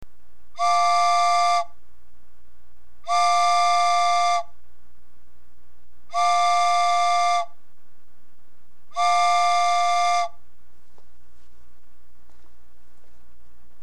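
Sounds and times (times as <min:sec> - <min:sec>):
small train: 0:00.6 - 0:01.8, 0:03.0 - 0:04.6, 0:06.0 - 0:07.8, 0:08.6 - 0:13.8.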